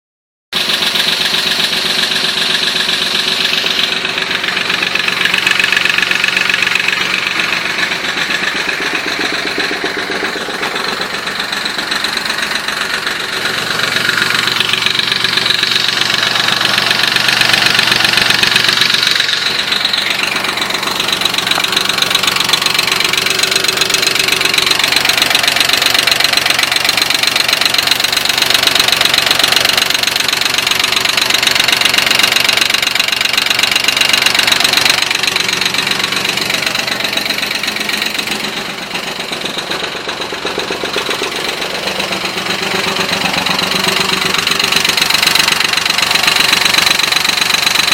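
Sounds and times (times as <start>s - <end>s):
1999 Porsche Boxster 986 engine ticking tap noise: 0.6s - 47.9s.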